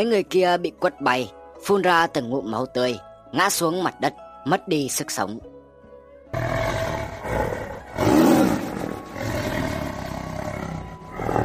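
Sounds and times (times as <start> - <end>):
speech: 0.0 - 5.5
tiger roaring: 6.3 - 11.4.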